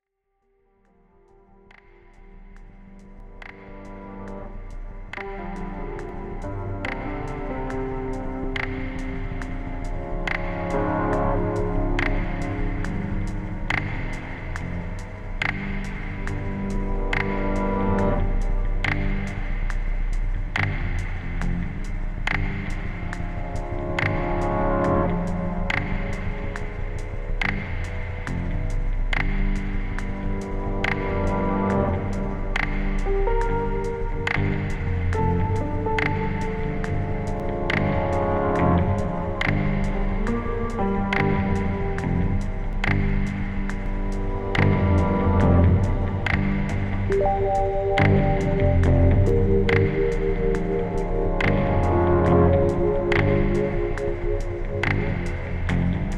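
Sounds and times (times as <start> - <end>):
lo-fi music: 0.9 - 56.1.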